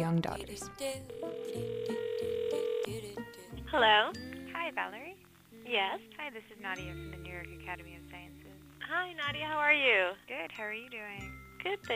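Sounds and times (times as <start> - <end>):
speech: 0.0 - 2.0, 2.9 - 11.9
telephone ringing with an electronic tone before a call: 1.1 - 3.0.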